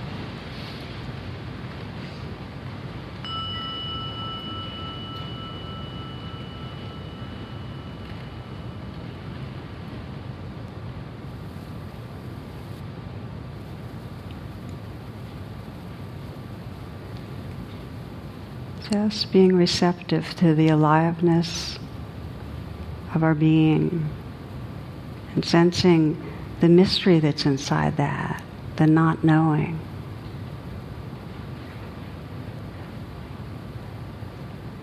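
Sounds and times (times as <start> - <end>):
low rumble: 0.0 - 34.8
meditation gong struck and ringing: 3.2 - 9.3
speech: 18.9 - 21.8, 23.2 - 24.2, 25.4 - 29.9.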